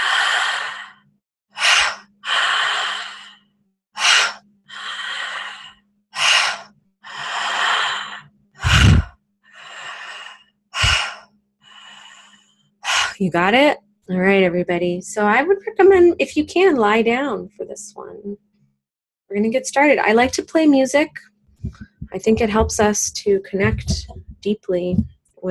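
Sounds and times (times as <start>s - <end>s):
relaxed breathing in and out during a guided breathing exercise: 0.0s - 1.0s, 1.6s - 13.2s
speech: 13.2s - 18.5s, 19.3s - 25.4s.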